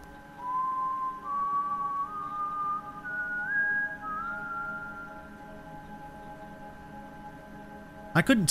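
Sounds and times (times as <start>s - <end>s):
man whistling a slow wandering tune: 0.4s - 5.4s
speech: 8.2s - 8.4s.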